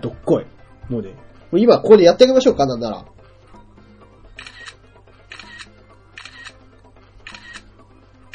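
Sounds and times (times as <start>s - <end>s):
speech: 0.0s - 3.2s
phone camera shutter clicks: 4.4s - 6.6s, 7.3s - 7.7s.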